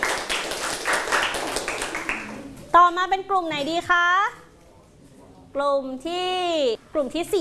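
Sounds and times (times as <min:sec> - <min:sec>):
classroom students clapping for classmates: 0:00.0 - 0:02.5
speech: 0:02.8 - 0:04.4, 0:05.5 - 0:07.3.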